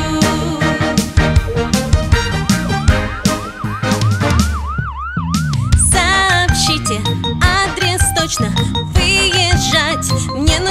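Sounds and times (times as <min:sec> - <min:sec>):
loud bouncy music with a steady beat: 0:00.0 - 0:10.6
ambulance siren wailing: 0:02.9 - 0:06.4.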